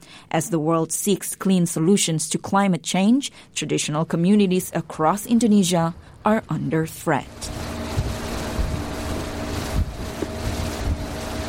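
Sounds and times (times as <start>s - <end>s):
speech: 0.3s - 7.8s
boat engine drone on open water: 7.0s - 11.4s
water splashing against boat hull: 7.3s - 11.4s
wind buffeting microphone: 7.4s - 11.4s.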